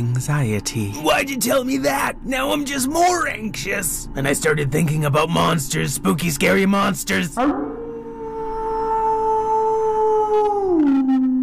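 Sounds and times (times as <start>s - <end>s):
speech: 0.0s - 7.7s
distant mournful howl: 7.4s - 11.4s.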